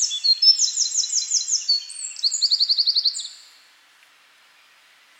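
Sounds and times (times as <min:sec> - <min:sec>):
Eurasian wren singing rattling trills and piercing notes: 0:00.0 - 0:03.3.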